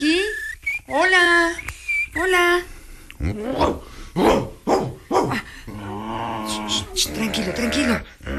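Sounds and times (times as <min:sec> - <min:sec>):
speech: 0:00.9 - 0:04.5, 0:07.0 - 0:08.2
dog barking: 0:03.6 - 0:05.4
dog growling: 0:05.7 - 0:08.3.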